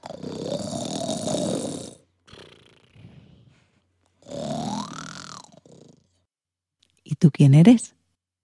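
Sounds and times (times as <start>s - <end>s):
man snoring: 0.0s - 6.2s
speech: 7.2s - 8.0s.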